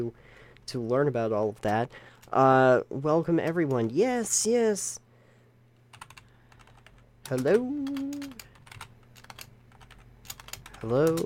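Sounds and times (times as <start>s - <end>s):
speech: 0.0s - 5.0s, 7.3s - 8.4s, 10.8s - 11.2s
low steady hum: 0.0s - 11.2s
typing on a computer keyboard: 5.9s - 11.2s.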